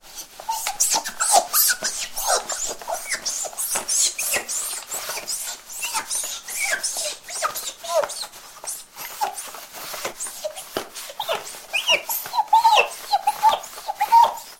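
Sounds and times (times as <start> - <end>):
mirror sounds: 0.0 - 14.5.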